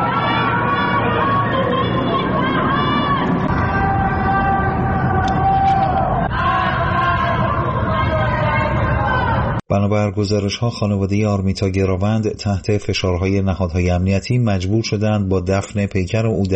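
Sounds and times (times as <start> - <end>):
crowd chanting protest slogans at night in Tehran: 0.0 - 9.6
speech: 9.7 - 16.5.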